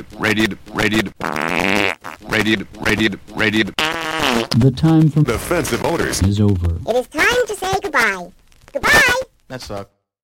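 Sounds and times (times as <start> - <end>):
speech: 0.0 - 10.0
voice imitating the South American farting frog: 0.8 - 2.6, 3.4 - 4.6.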